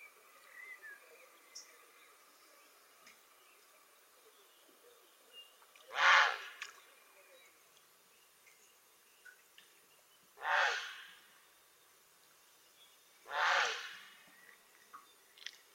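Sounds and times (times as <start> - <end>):
background hiss: 0.0 - 15.7
grey heron croaks: 5.9 - 6.6, 10.4 - 11.2, 13.3 - 14.2.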